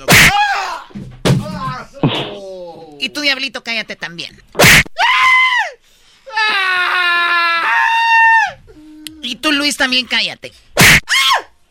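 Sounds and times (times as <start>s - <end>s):
shrill high-pitched human scream: 0.1s - 0.9s, 4.6s - 8.7s, 10.8s - 11.5s
speech: 3.0s - 4.9s, 9.5s - 10.7s.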